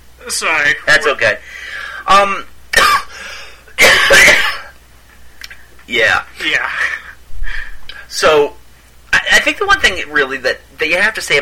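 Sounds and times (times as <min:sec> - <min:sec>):
speech: 0:00.2 - 0:03.0, 0:05.9 - 0:07.0, 0:08.1 - 0:08.6, 0:09.3 - 0:11.4
person coughing harshly: 0:02.7 - 0:04.8.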